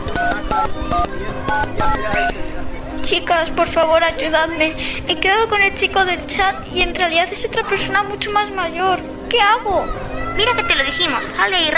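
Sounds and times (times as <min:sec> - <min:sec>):
touch-tone beeps of a telephone number being dialed: 0:00.1 - 0:02.4
speech: 0:00.6 - 0:11.7.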